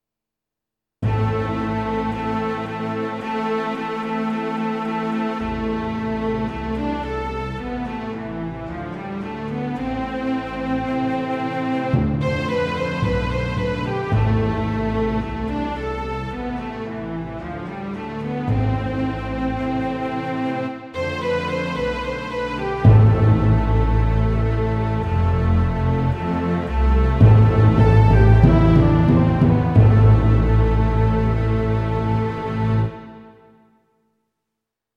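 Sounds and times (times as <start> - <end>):
small orchestra playing: 1.0 - 33.5.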